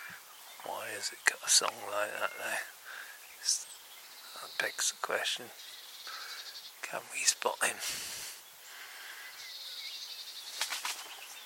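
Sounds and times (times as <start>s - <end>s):
faint bird calls outdoors: 0.0s - 11.4s
speech: 1.0s - 2.8s, 3.4s - 3.7s, 4.4s - 5.8s, 6.9s - 8.2s
pigeon wings flapping: 10.6s - 11.1s.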